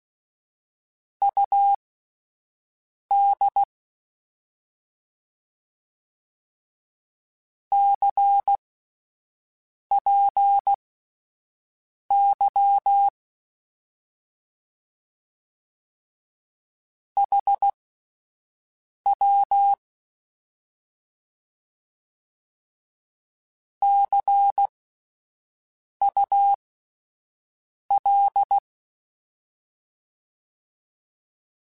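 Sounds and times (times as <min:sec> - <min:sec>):
Morse code beeps: 0:01.3 - 0:01.8, 0:03.1 - 0:03.7, 0:07.8 - 0:08.6, 0:09.9 - 0:10.8, 0:12.1 - 0:13.1, 0:17.2 - 0:17.7, 0:19.1 - 0:19.8, 0:23.8 - 0:24.7, 0:26.0 - 0:26.6, 0:27.9 - 0:28.6.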